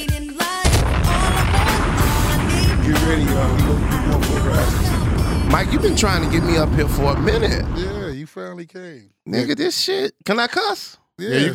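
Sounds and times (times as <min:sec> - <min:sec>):
bomb explosion sound effect: 0:00.6 - 0:08.1
tonal lead-in: 0:00.7 - 0:08.1
speech: 0:03.2 - 0:11.5.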